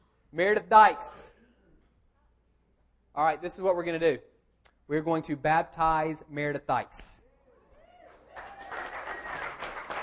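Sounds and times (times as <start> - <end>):
speech: 0.3 - 1.3, 3.2 - 4.3, 4.9 - 7.2
faint cheer or whistle: 7.8 - 9.6
audience applauding: 8.1 - 10.0.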